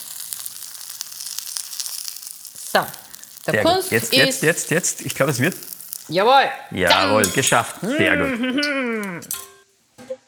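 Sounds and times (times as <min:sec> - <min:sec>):
eggs frying in oil in a pan: 0:00.0 - 0:08.1
speech: 0:02.8 - 0:09.4
laughter: 0:03.6 - 0:05.6, 0:06.9 - 0:09.3.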